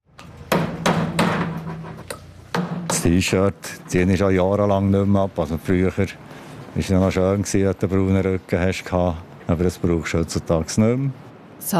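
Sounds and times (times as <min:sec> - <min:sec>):
steady hum of a busy construction site: 0:00.1 - 0:11.4
sharp ringing hammer blows on a construction site: 0:00.2 - 0:03.8
speech: 0:03.0 - 0:11.7.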